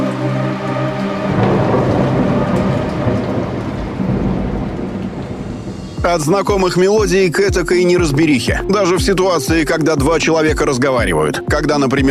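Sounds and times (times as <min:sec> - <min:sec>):
heavy rain: 0:00.0 - 0:09.1
deep thunder rumbling: 0:00.1 - 0:08.7
speech: 0:06.1 - 0:12.0.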